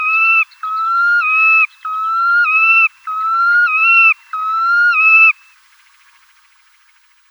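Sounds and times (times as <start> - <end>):
red knot whistled song: 0.0 - 5.5.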